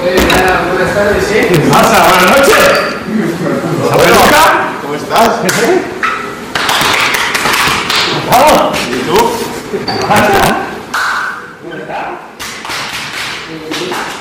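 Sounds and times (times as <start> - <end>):
speech: 0.8 - 6.0, 8.3 - 10.7
hard slaps on backs as football players embrace: 6.5 - 8.2, 10.9 - 11.4, 12.4 - 14.1.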